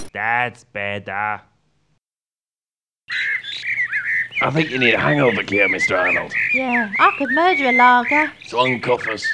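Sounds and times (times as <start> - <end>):
speech: 0.2 - 1.5, 3.1 - 3.4, 4.4 - 9.3
birds harsh squawking and shrill chirping calls: 3.1 - 9.3.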